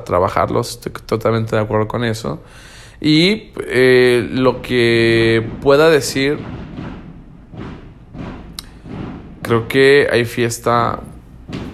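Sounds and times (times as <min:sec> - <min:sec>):
speech: 0:00.0 - 0:06.6, 0:09.5 - 0:11.1
firework rockets exploding in the distance: 0:03.4 - 0:11.7.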